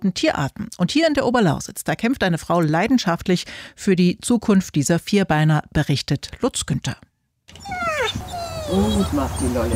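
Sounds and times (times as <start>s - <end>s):
speech: 0.0s - 7.1s, 8.1s - 9.7s
sheep poodle puppies whimpering and whining in Upper Lusatia Germany: 7.5s - 9.7s.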